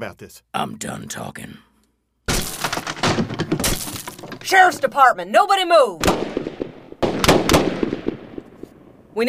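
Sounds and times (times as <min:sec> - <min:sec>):
speech: 0:00.0 - 0:01.7, 0:04.4 - 0:06.3
gunshots during an armed standoff: 0:02.3 - 0:04.8, 0:06.0 - 0:09.0.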